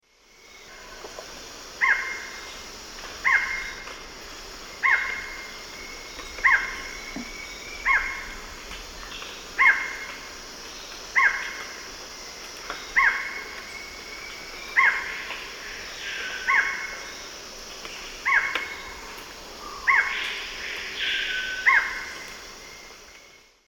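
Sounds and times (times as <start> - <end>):
Micrastur ruficollis song in eastern lowlands of South America: 4.7 - 23.6.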